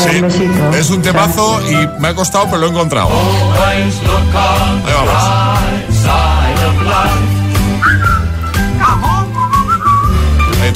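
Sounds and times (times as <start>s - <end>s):
speech: 0.0s - 7.2s
instrumental backing with a firm bass line: 0.0s - 10.7s
whistled melody from a film soundtrack: 7.3s - 10.7s.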